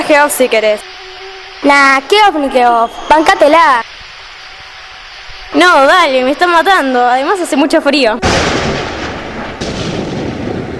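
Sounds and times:
deep booming thunder of an approaching storm over a forest: 0.0s - 10.7s
speech: 0.1s - 1.0s, 1.6s - 3.9s, 5.5s - 8.8s.

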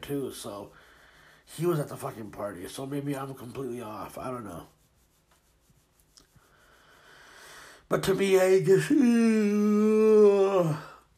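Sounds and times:
speech: 0.1s - 0.9s, 1.5s - 4.8s, 7.9s - 10.9s
loud drawn-out human yawn: 9.8s - 11.1s.

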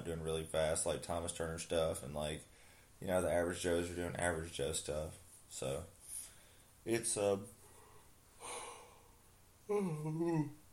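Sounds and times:
speech: 0.0s - 6.0s, 6.8s - 7.6s, 9.7s - 10.6s
breathy exhale: 7.6s - 9.2s
person yawning after a long mountain-bike stage race: 8.4s - 9.1s, 9.7s - 10.6s.

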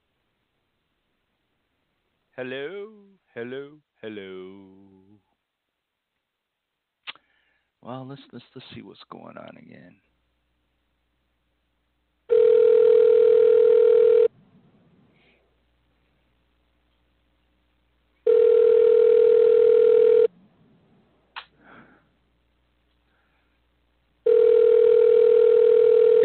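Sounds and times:
speech: 2.4s - 5.0s, 7.8s - 10.1s
phone ringback tone buzz: 12.3s - 14.3s, 18.3s - 20.3s, 24.2s - 26.2s.

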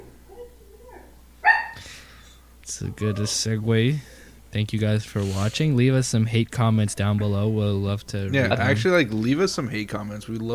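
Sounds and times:
dog barking: 0.3s - 1.9s
breathy huff: 1.7s - 2.5s
speech: 2.7s - 10.5s.

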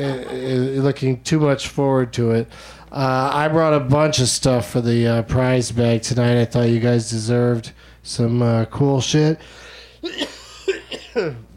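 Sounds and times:
speech: 0.0s - 10.2s, 11.2s - 11.5s
person coughing: 10.0s - 11.5s.

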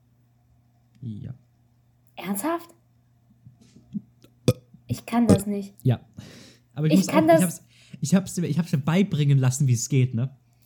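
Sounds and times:
low steady hum: 0.0s - 7.9s
speech: 1.0s - 1.5s, 2.2s - 2.8s, 5.1s - 10.4s
faint throaty sounds: 3.9s - 5.5s
short forced burp: 4.5s - 5.5s.

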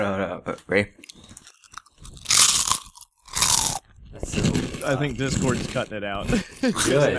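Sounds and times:
speech: 0.3s - 1.4s, 4.4s - 7.1s
crunching snack while chewing: 1.0s - 5.9s.

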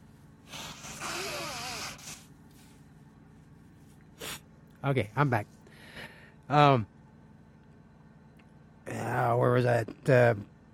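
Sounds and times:
person blowing their nose: 0.5s - 2.3s, 4.2s - 4.4s
speech: 4.8s - 5.6s, 6.5s - 7.0s, 9.3s - 10.5s.

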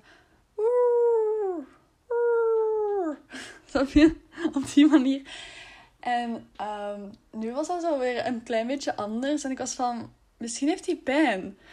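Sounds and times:
person imitating a dog's whining bark: 0.6s - 3.3s
speech: 3.7s - 11.7s.

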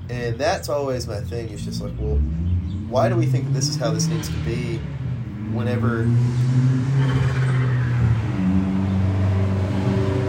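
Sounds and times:
car engine revving: 0.0s - 10.2s
speech: 0.1s - 8.6s.

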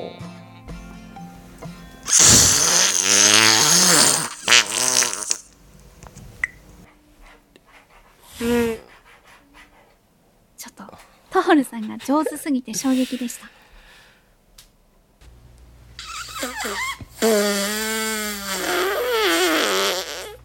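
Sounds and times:
faint music: 0.0s - 2.8s
mouth-made fart sound blown with the lips: 2.1s - 5.5s, 8.3s - 8.9s, 16.0s - 20.4s
speech: 11.8s - 13.6s.

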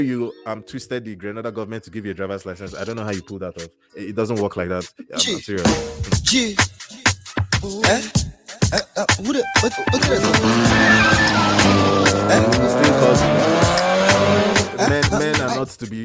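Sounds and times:
speech: 0.0s - 6.8s, 7.6s - 13.8s, 14.8s - 16.0s
tires squealing as a car accelerates away: 10.1s - 14.8s
car engine revving: 10.1s - 15.6s.

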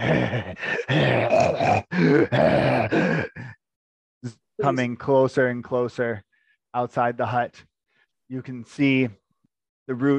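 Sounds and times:
speech: 0.0s - 3.2s, 4.2s - 7.7s, 8.3s - 9.2s, 9.9s - 10.1s
person imitating ragged tattered breathing with groans: 0.0s - 3.7s.

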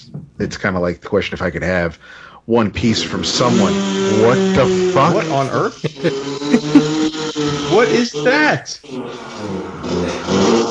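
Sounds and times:
laughter: 0.4s - 10.6s
speech: 0.4s - 10.6s
motorbike engine revving as it passes by: 2.8s - 10.6s.

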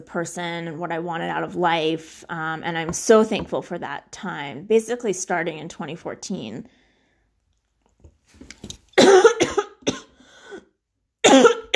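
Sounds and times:
speech: 0.0s - 6.8s
person coughing harshly: 9.0s - 11.7s.

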